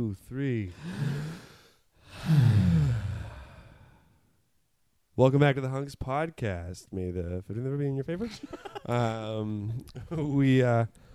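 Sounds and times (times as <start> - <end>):
speech: 0.0 - 1.4, 2.2 - 2.7, 5.2 - 11.1
quick breath taken on a count: 0.7 - 4.2
laughter: 8.2 - 9.2.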